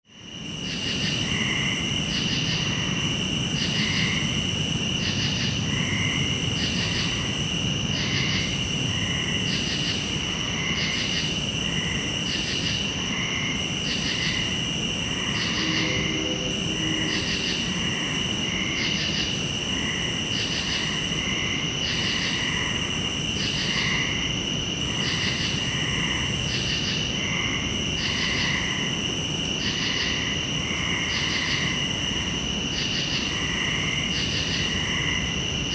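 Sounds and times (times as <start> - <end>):
crickets chirping: 0.1 - 35.7
frogs croaking: 0.1 - 35.7
distant train: 14.4 - 18.7.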